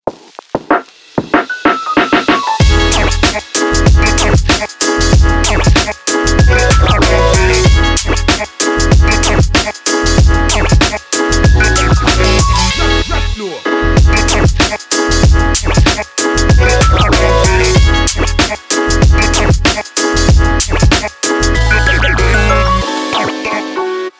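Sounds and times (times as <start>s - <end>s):
upbeat background hip hop music: 0.1s - 24.1s.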